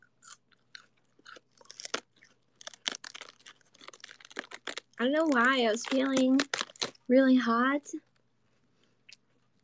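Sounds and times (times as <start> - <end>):
crunchy chewing of cold crispy lettuce head: 0.0 - 7.1
speech: 5.0 - 6.5, 7.1 - 8.1.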